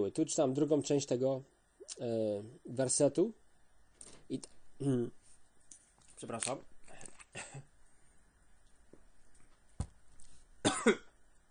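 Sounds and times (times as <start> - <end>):
speech: 0.0 - 3.4, 4.3 - 5.2, 6.2 - 6.7, 10.8 - 11.0
person clearing throat: 7.3 - 7.7, 10.7 - 11.2.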